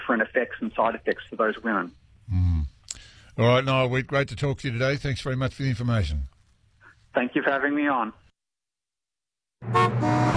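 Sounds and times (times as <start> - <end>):
speech: 0.1 - 2.5, 3.4 - 6.3, 7.2 - 8.2, 9.6 - 10.3
car horns honking in traffic: 9.6 - 10.3.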